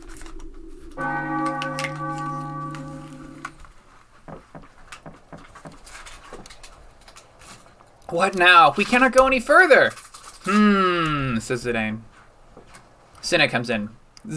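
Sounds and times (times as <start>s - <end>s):
bell striking the hour: 1.0s - 3.7s
speech: 8.1s - 12.1s, 13.3s - 14.3s.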